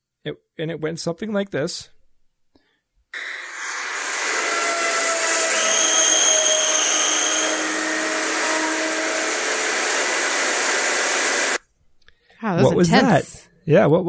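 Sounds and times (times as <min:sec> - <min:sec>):
speech: 0:00.2 - 0:02.0, 0:12.4 - 0:14.0
nuclear fusion reactor running with roar and whining tones: 0:03.2 - 0:11.6.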